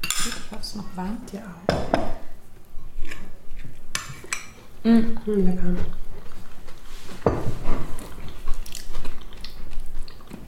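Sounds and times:
speech: 0:00.2 - 0:02.2, 0:04.8 - 0:06.0
crunchy gluten-free crumble with tiny streusel bits being bitten and chewed: 0:02.9 - 0:07.2, 0:07.8 - 0:10.4.

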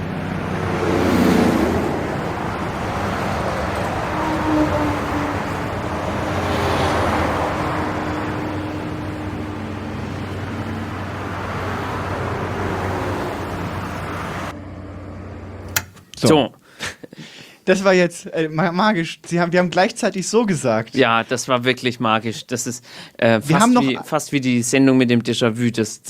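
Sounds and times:
distant motorway traffic rushing: 0:00.0 - 0:16.6, 0:23.5 - 0:24.0
speech: 0:16.2 - 0:16.6, 0:17.7 - 0:26.0.

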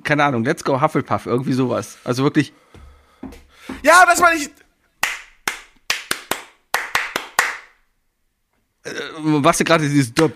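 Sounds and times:
speech: 0:00.1 - 0:04.6, 0:09.2 - 0:10.3
rhythmic hand clapping: 0:03.2 - 0:07.8.

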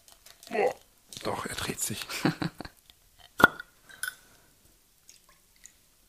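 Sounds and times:
speech: 0:00.5 - 0:02.6
laughter: 0:02.0 - 0:02.7
soft drips and trickles of liqueur: 0:05.0 - 0:05.9.

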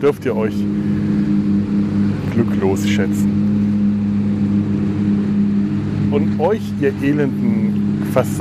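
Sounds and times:
speech: 0:00.0 - 0:01.2, 0:02.4 - 0:03.6, 0:06.1 - 0:08.4
jet ski engine droning: 0:00.0 - 0:08.4.

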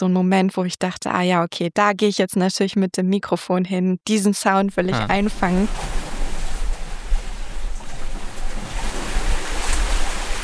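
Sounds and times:
speech: 0:00.0 - 0:06.0
sea water sloshing in beneath an open structure: 0:05.7 - 0:10.4.

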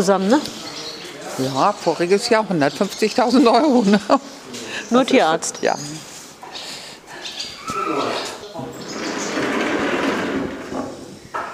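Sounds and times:
speech: 0:00.0 - 0:00.6, 0:01.4 - 0:06.0
indistinct voices: 0:00.0 - 0:11.3
door opened with creaking scraping sweep: 0:07.5 - 0:11.5.

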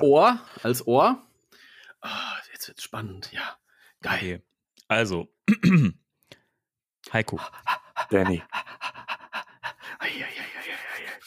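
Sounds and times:
speech: 0:00.0 - 0:01.3, 0:02.0 - 0:06.0, 0:07.0 - 0:09.0, 0:10.0 - 0:11.2
person imitating a dog's excited panting: 0:07.4 - 0:11.2.

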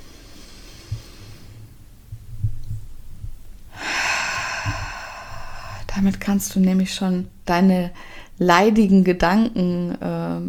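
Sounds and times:
deep breath: 0:00.0 - 0:02.6, 0:03.7 - 0:05.9, 0:08.0 - 0:08.4
low soft thumps: 0:00.7 - 0:08.0
speech: 0:06.0 - 0:10.4.

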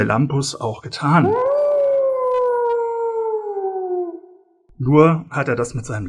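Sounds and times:
speech: 0:00.0 - 0:01.7, 0:04.8 - 0:06.0
watchdog howling an alarm: 0:01.2 - 0:04.4.

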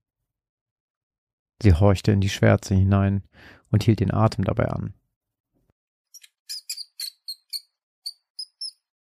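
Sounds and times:
speech: 0:01.6 - 0:05.0
shrill high-pitched chirpy squeaks: 0:06.1 - 0:08.9.

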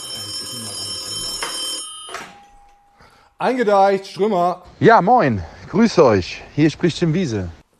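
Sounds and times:
old-fashioned telephone bell ringing: 0:00.0 - 0:03.2
speech: 0:03.4 - 0:07.6.

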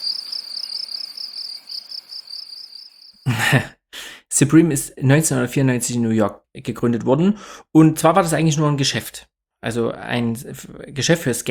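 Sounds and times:
high-pitched cricket chirping: 0:00.0 - 0:03.3
speech: 0:03.3 - 0:03.8, 0:04.4 - 0:11.4.

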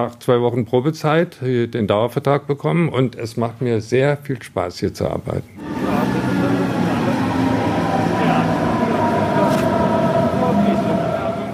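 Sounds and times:
speech: 0:00.0 - 0:06.2
commuter S-Bahn train pulling into S-Bahn station Leim: 0:05.6 - 0:11.5.

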